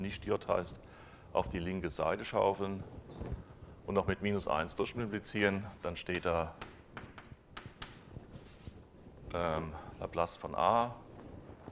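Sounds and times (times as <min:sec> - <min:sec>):
speech: 0:00.0 - 0:06.8, 0:09.3 - 0:11.0
pen or chalk writing an equation by hand: 0:05.5 - 0:08.8.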